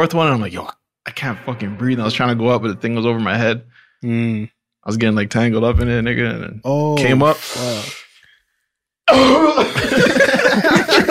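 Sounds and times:
speech: 0.0s - 8.0s, 9.1s - 11.0s
heavy rasping cough: 9.1s - 10.6s
laughter: 9.1s - 11.0s.

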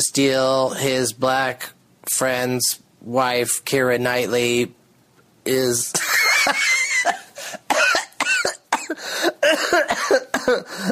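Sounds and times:
speech: 0.1s - 4.8s, 5.4s - 7.2s, 8.9s - 10.8s
person in a coughing fit with wheezy gasps: 6.8s - 10.8s.

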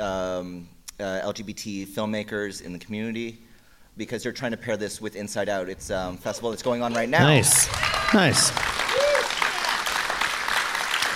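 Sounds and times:
speech: 0.0s - 9.1s
audience applause: 7.1s - 11.1s.

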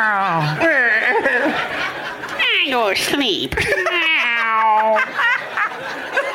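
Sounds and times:
laughter: 0.2s - 2.7s, 3.5s - 6.3s
speech: 2.8s - 5.5s
person imitating a weary old cat meowing: 3.9s - 4.8s.

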